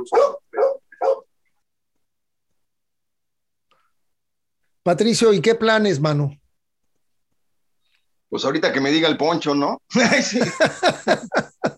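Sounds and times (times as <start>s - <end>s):
speech: 0.0s - 0.4s, 4.8s - 6.4s, 8.3s - 11.5s
family's dogs barking raspily: 0.0s - 1.4s
laughter: 9.9s - 11.7s.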